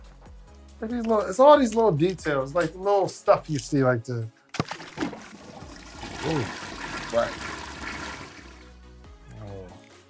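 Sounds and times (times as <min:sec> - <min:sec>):
speech: 0:00.8 - 0:04.4, 0:06.2 - 0:07.5
toilet flushing: 0:04.8 - 0:08.8.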